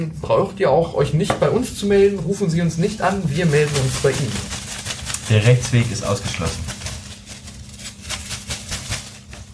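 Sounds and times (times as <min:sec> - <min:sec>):
speech: 0:00.0 - 0:04.6, 0:05.3 - 0:06.7
bag of draw slips being shaken: 0:02.8 - 0:09.5.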